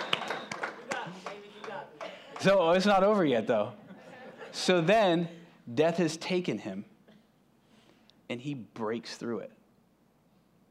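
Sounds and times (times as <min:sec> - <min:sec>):
audience clapping in a slow steady rhythm: 0:00.0 - 0:03.2
speech: 0:02.4 - 0:03.8, 0:04.6 - 0:06.9, 0:08.3 - 0:09.6
laughter: 0:03.4 - 0:04.9.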